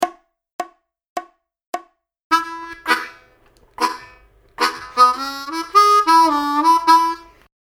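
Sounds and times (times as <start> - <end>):
solo harmonica playing chugging licks at 105 BPM: 2.3 - 7.5.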